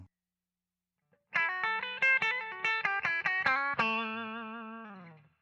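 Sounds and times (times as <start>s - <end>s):
clean electric guitar on bridge pickup: 1.3s - 5.4s.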